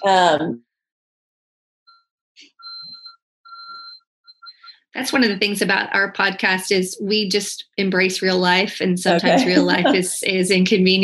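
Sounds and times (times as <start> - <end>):
speech: 0.0 - 0.7, 5.0 - 11.0
house alarm beeping in shrill electronic tones: 2.5 - 4.8
laughter: 9.1 - 10.2.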